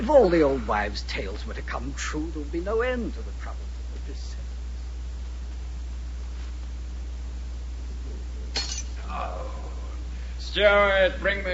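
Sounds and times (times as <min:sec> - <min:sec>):
speech: 0:00.0 - 0:03.6, 0:10.6 - 0:11.5
steady low hum: 0:00.0 - 0:11.5
wine glass dropped and shattering on the floor: 0:08.5 - 0:09.0.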